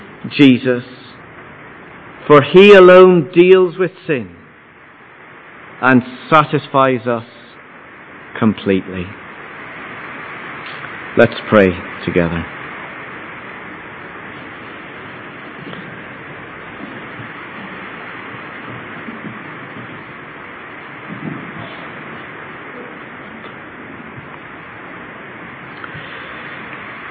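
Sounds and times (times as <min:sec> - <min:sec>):
speech: 0:00.2 - 0:01.0, 0:02.2 - 0:04.4, 0:05.8 - 0:07.4, 0:08.4 - 0:09.2, 0:11.2 - 0:12.6
rain drumming on a roof: 0:08.9 - 0:27.0.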